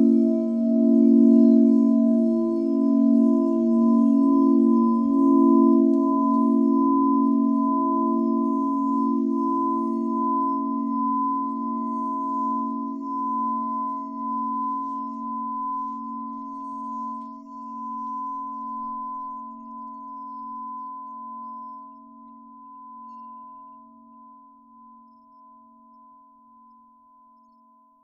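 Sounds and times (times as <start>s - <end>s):
crystal singing bowl ringing: 0.0s - 28.0s.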